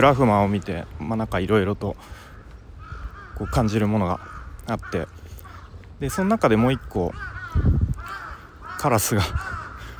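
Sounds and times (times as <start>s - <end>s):
speech: 0.0s - 2.3s, 3.4s - 5.2s, 6.0s - 8.2s, 8.8s - 9.6s
crow cawing: 2.0s - 9.9s.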